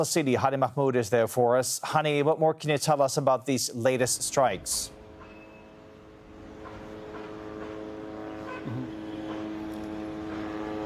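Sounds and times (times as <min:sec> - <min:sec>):
speech: 0:00.0 - 0:05.0
military drones hovering overhead: 0:04.0 - 0:10.8.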